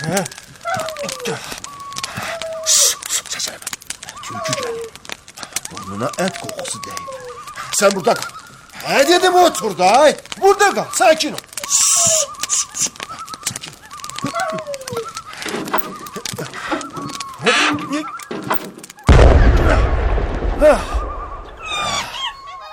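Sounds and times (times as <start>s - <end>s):
speech: 0.0s - 0.5s, 6.0s - 7.2s, 7.8s - 11.8s
birds chirping and calling: 0.0s - 19.2s, 20.0s - 22.7s
loud gunshot: 19.1s - 22.1s.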